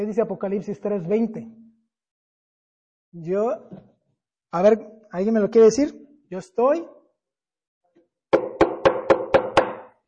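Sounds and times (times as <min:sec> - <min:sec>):
speech: 0:00.0 - 0:01.6, 0:03.1 - 0:03.9, 0:04.5 - 0:07.0
knocking on a wooden door: 0:08.3 - 0:09.9.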